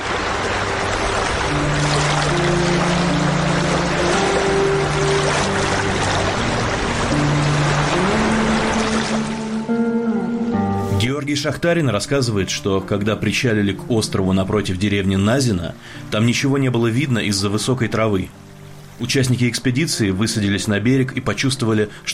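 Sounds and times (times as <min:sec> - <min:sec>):
broad splashing and rushing river water: 0:00.0 - 0:09.9
rented river boat motor droning on a river north of Tomsk: 0:00.0 - 0:10.7
speech: 0:11.4 - 0:22.1.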